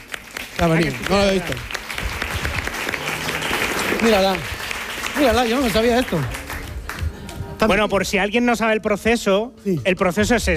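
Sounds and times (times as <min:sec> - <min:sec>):
audience applause: 0:00.0 - 0:07.6
speech: 0:00.6 - 0:01.8, 0:04.0 - 0:04.6, 0:05.2 - 0:06.4, 0:07.6 - 0:10.5.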